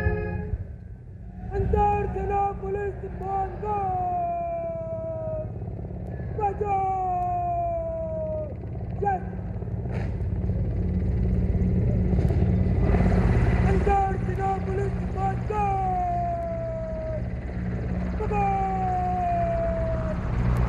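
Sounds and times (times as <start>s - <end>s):
high gliding whistle-like tones sliding downward: 0.0s - 3.9s
Mi-17 helicopters flying overhead: 0.0s - 20.6s.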